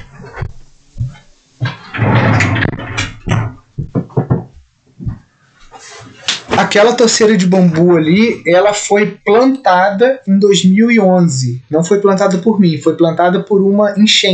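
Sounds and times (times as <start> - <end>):
rustling and scraping of a door being handled: 0.0 - 6.9
sharp knocking thuds of a door pushed shut: 1.6 - 5.2
speech: 6.7 - 14.3.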